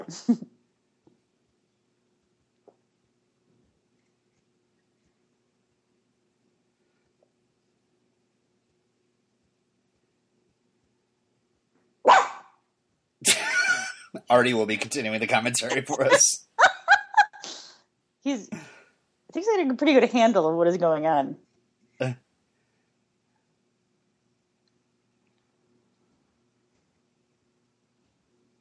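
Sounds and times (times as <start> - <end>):
speech: 0.1 - 0.6, 14.2 - 16.5, 18.2 - 18.7, 19.3 - 22.2
dog barking: 12.1 - 12.6
laughter: 13.3 - 17.5.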